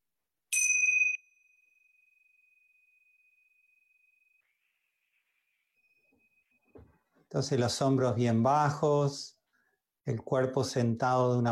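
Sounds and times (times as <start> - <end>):
small hand bell rung to open a guided meditation: 0.5 - 4.4
speech: 7.3 - 9.4, 10.1 - 11.5.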